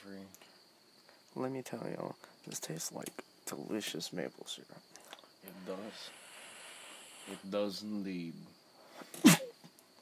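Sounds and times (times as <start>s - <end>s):
speech: 1.4s - 6.2s, 7.2s - 9.4s
sneeze: 9.1s - 9.6s.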